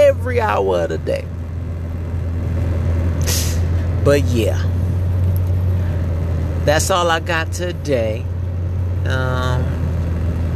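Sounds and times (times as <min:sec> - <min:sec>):
low rumble of a car interior while driving: 0:00.0 - 0:10.5
speech: 0:00.4 - 0:01.4, 0:04.0 - 0:04.8, 0:06.6 - 0:08.3, 0:09.0 - 0:09.8.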